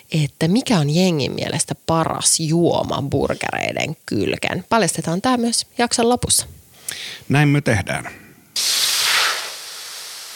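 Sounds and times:
speech: 0.1s - 8.7s
grill sizzling: 8.6s - 10.3s.

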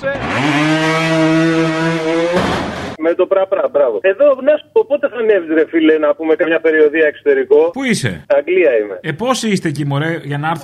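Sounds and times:
voice imitating a boat's outboard motor revving: 0.0s - 3.0s
speech: 3.0s - 10.6s.

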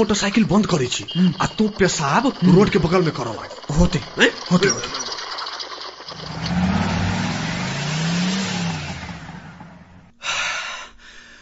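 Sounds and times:
speech: 0.0s - 5.1s
police vehicle engine approaching on a roadside: 6.1s - 10.1s.

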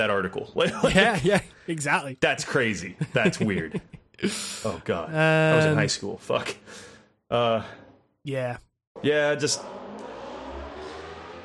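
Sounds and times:
speech: 0.0s - 9.8s
laughter: 0.6s - 1.5s, 2.9s - 4.1s
motorcycle engine revving: 9.0s - 11.4s.

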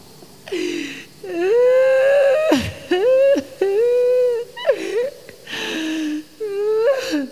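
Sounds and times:
catches of breath: 0.5s - 1.2s, 4.8s - 6.3s
loud wavering bawling like a small child: 1.2s - 7.3s.

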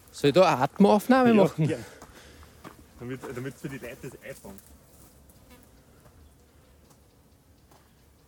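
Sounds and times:
speech: 0.2s - 1.9s, 3.0s - 4.8s
flies buzzing outdoors near a cow pasture: 4.7s - 8.2s.

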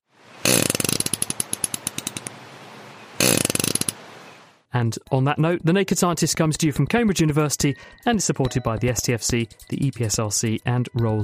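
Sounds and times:
fish farting: 0.4s - 2.3s, 3.2s - 4.1s
speech: 4.8s - 11.2s.

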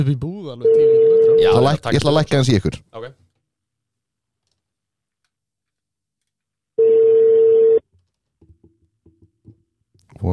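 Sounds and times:
speech: 0.0s - 3.2s, 10.2s - 10.3s
outgoing phone call ringing tone: 0.6s - 1.7s, 6.8s - 7.8s.

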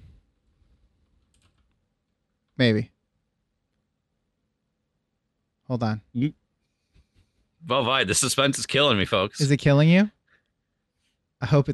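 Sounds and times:
low noise: 0.0s - 11.7s
faint typing on a computer keyboard: 1.2s - 1.8s
speech: 2.6s - 2.9s, 5.7s - 6.4s, 7.6s - 10.2s, 11.4s - 11.7s.

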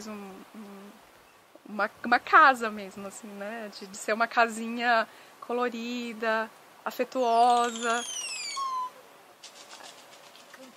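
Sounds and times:
speech: 0.0s - 1.0s, 1.6s - 8.2s
oropendola calling with a descending whistled phrase and gurgling notes: 7.1s - 9.2s.

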